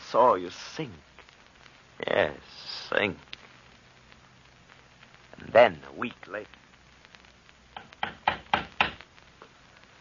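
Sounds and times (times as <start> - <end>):
speech: 0.1 - 1.1, 2.0 - 3.3, 5.4 - 6.6
firm knocking on a door: 7.8 - 9.0.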